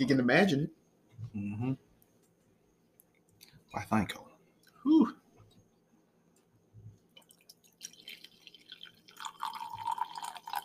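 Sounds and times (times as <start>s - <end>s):
speech: 0.0s - 1.9s, 3.7s - 5.2s
drink pouring into a glass: 7.2s - 10.6s.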